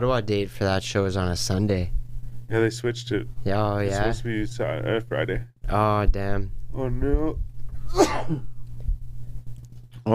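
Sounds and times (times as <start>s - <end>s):
speech: 0.0s - 8.5s
room hum: 0.0s - 10.1s
person sneezing: 7.9s - 8.5s.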